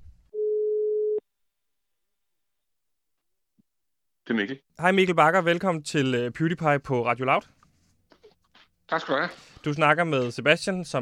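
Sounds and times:
telephone ringing tone during an outgoing call: 0:00.4 - 0:01.2
speech: 0:04.3 - 0:07.6, 0:08.9 - 0:11.0.

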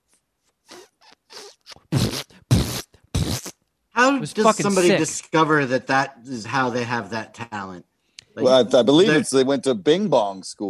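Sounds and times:
voice imitating a queef: 0:00.7 - 0:03.6
speech: 0:04.1 - 0:10.6.

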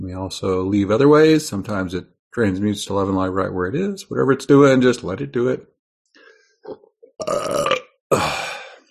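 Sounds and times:
speech: 0:00.1 - 0:05.7, 0:06.6 - 0:07.7
person belching: 0:06.7 - 0:08.8.

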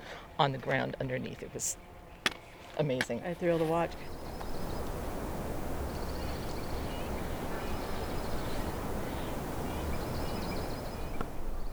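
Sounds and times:
dark-eyed junco and other small birds chirping: 0:00.0 - 0:11.7
speech: 0:00.4 - 0:01.9, 0:02.8 - 0:04.2
steady rushing outdoor noise: 0:03.4 - 0:11.7.

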